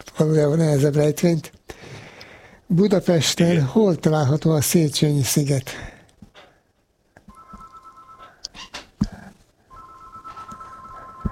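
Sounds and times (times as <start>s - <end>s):
speech: 0.0s - 1.5s, 2.7s - 5.9s
telephone ringing in electronic tones: 7.3s - 8.4s, 9.7s - 11.3s.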